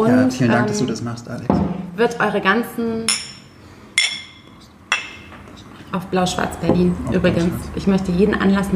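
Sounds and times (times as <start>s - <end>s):
speech: 0.0s - 3.3s, 5.9s - 8.7s
glasses clinking together in a toast: 3.1s - 5.4s.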